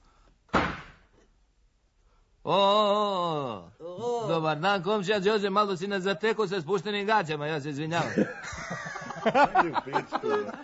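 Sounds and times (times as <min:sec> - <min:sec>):
door slamming: 0:00.5 - 0:01.1
speech: 0:02.5 - 0:03.0, 0:04.3 - 0:10.6
laughter: 0:07.9 - 0:10.6.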